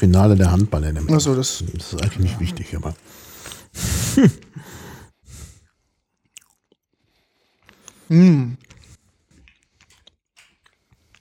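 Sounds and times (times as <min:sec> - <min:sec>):
chewing macarons with meringue shells: 0:00.0 - 0:03.7, 0:05.6 - 0:11.2
speech: 0:00.0 - 0:04.7, 0:08.1 - 0:08.6
laughter: 0:04.0 - 0:04.7.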